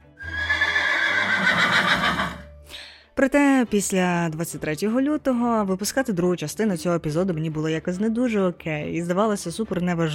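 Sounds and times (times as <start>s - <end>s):
horse whinnying: 0.1s - 2.5s
speech: 3.2s - 10.1s.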